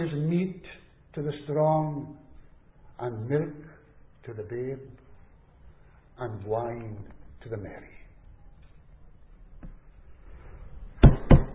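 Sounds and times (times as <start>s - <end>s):
speech: 0.0s - 2.2s, 3.0s - 5.0s, 6.2s - 8.0s
knocking on a hard surface: 11.0s - 11.5s.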